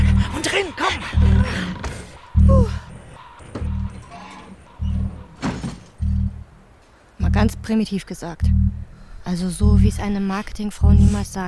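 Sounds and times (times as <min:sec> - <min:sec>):
short mechanical rumbles: 0:00.0 - 0:07.6
heavy low thumps of a door opening: 0:00.0 - 0:07.8, 0:08.4 - 0:11.4
faint hum: 0:00.0 - 0:11.4
door opening: 0:00.5 - 0:06.6
speech: 0:07.7 - 0:11.4.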